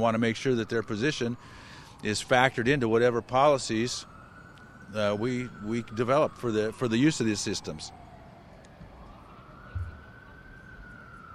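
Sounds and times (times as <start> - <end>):
speech: 0.0 - 4.1, 4.9 - 8.0
fire department siren on passing fire engine: 0.0 - 11.3
thump: 9.8 - 10.0.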